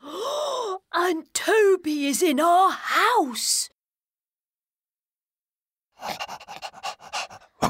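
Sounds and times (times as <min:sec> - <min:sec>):
speech: 0:01.1 - 0:03.7
large dog panting in a garden: 0:06.0 - 0:07.6.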